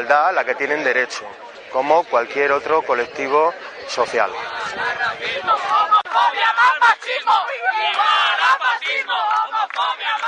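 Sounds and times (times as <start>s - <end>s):
speech: 0.0s - 10.2s
protest crowd chanting at a demonstration in Alicante: 3.6s - 10.2s.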